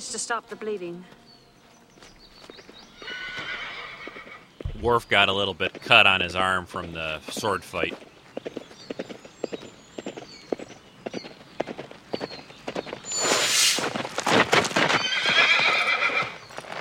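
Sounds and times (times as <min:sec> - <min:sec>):
speech: 0:00.0 - 0:01.3, 0:04.8 - 0:08.6
horse hooves clip-clopping at a walking pace: 0:00.0 - 0:16.7
horse neighing and whinnying: 0:03.0 - 0:04.5, 0:14.9 - 0:16.7.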